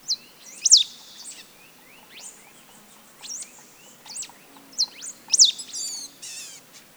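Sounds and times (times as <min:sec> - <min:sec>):
Serra finch: 0:00.1 - 0:06.7.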